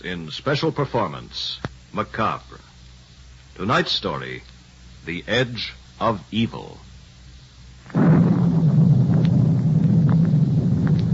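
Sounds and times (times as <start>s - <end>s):
speech: 0.0s - 2.7s, 3.6s - 6.9s
deep rumbling of a storm: 7.8s - 11.1s
storm wind roaring: 7.9s - 11.1s.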